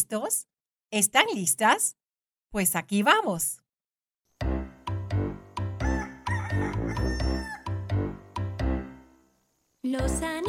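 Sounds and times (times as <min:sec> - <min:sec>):
speech: 0:00.0 - 0:03.6, 0:09.9 - 0:10.4
lively music: 0:04.4 - 0:09.1
person imitating a rooster crowing: 0:05.8 - 0:07.8.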